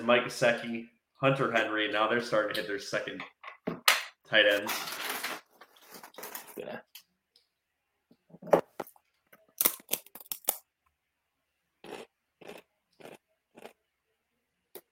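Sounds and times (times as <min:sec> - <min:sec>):
speech: 0:00.0 - 0:05.0, 0:06.6 - 0:06.8
person chewing crunchy food near microphone: 0:11.8 - 0:13.8.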